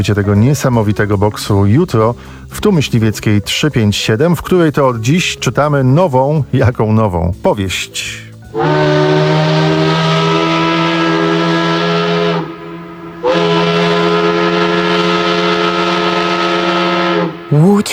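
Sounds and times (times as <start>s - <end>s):
speech: 0.0s - 9.9s
shrill factory whistle blaring in the early morning in Łódź: 8.5s - 17.9s.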